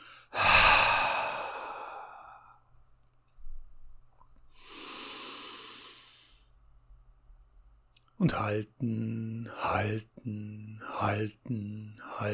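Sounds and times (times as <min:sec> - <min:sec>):
deep breath drawn in with a loud airy rush: 0:00.0 - 0:02.6, 0:04.5 - 0:06.5
speech: 0:08.2 - 0:12.3.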